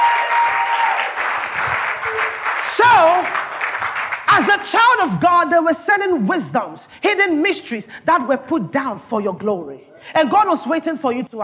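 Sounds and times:
audience clapping, many hands applauding: 0.0s - 4.8s
speech: 4.4s - 11.4s.

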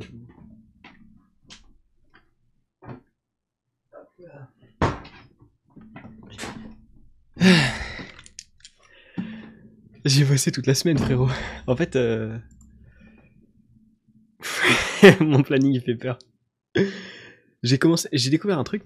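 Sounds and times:
speech: 7.4s - 7.8s, 10.1s - 12.6s, 15.0s - 18.8s
faint sigh: 7.4s - 8.3s, 16.8s - 17.4s
door pushed shut with a thud: 10.9s - 13.2s
laughter: 14.5s - 15.6s.

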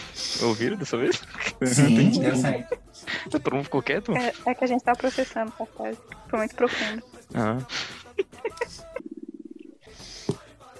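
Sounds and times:
laughter: 0.2s - 5.4s, 6.4s - 9.0s
speech: 0.4s - 9.1s
stomach growling: 8.8s - 10.0s.

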